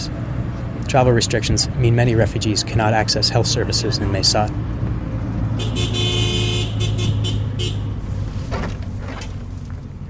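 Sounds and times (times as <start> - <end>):
pickup truck rumbling along with a low engine drone: 0.0 - 10.0
road noise: 0.0 - 10.0
speech: 0.9 - 4.8
horn honking: 5.6 - 8.0.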